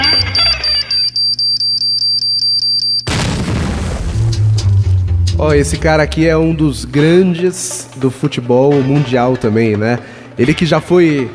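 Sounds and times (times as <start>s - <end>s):
rapid regular beeping tones: 0.0s - 3.1s
bomb explosion sound effect: 3.1s - 7.1s
speech: 5.4s - 11.3s.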